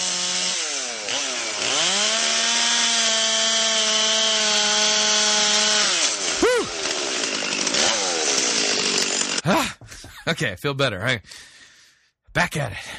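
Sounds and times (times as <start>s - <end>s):
chainsaw cutting through a big piece of wood: 0.0s - 9.6s
speech: 10.3s - 11.5s, 12.4s - 12.9s.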